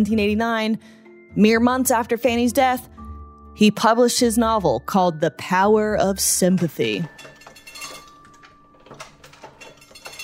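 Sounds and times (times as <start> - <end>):
speech: 0.0 - 3.0, 3.6 - 7.3
old printing press clanking and clacking: 6.6 - 10.2.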